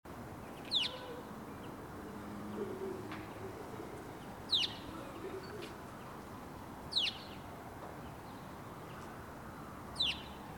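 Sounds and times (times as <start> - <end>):
steady background noise: 0.1 - 10.5
house sparrow Passer domesticus chirping: 0.5 - 1.8, 4.2 - 5.6, 6.9 - 7.4, 10.0 - 10.4.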